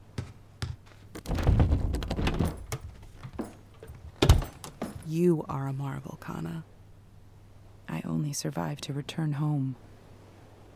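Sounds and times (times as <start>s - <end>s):
handling noises: 0.0s - 5.2s
door thudding shut: 1.2s - 5.0s
door lock clunking: 1.2s - 5.1s
speech: 5.1s - 6.7s, 7.9s - 9.9s.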